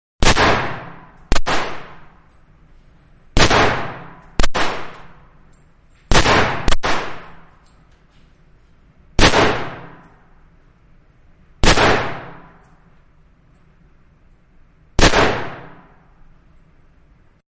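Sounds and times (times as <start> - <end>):
9mm and 357 pistol gunshots alternating in a gunfight: 0.2 - 2.2, 3.4 - 5.3, 6.1 - 7.6, 9.2 - 10.2, 11.6 - 12.6, 15.0 - 16.0.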